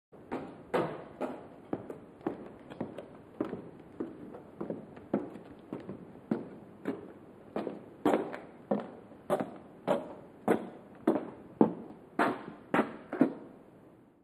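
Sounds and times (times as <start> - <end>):
footsteps with scuffs on tile: 0.3 - 13.4.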